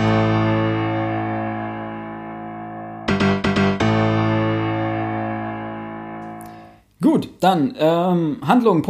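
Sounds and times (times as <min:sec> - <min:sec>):
loud distorted electronic chord music jingle: 0:00.0 - 0:06.8
speech: 0:07.1 - 0:08.8.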